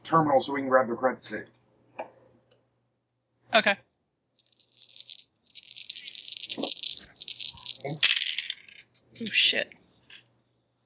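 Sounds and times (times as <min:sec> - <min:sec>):
speech: 0:00.1 - 0:01.6, 0:03.6 - 0:03.9, 0:07.8 - 0:08.1, 0:09.2 - 0:09.8
dice dropped and rattling: 0:04.4 - 0:09.0.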